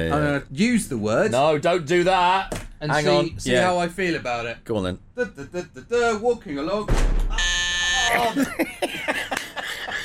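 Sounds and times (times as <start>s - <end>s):
speech: 0.0s - 7.5s, 8.1s - 9.4s
loud harsh electronic buzzer: 7.3s - 8.4s
laughter: 8.0s - 10.0s.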